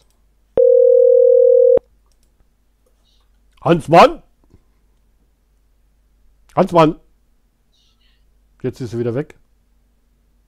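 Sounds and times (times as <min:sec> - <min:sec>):
electronic telephone call tone: 0:00.6 - 0:01.8
speech: 0:03.6 - 0:04.2, 0:06.6 - 0:07.0, 0:08.6 - 0:09.4.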